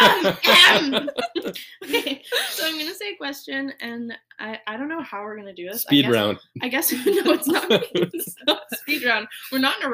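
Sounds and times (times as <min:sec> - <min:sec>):
person clearing throat: 0:00.0 - 0:01.0
laughter: 0:00.0 - 0:02.9, 0:05.9 - 0:09.7
speech: 0:00.2 - 0:09.9.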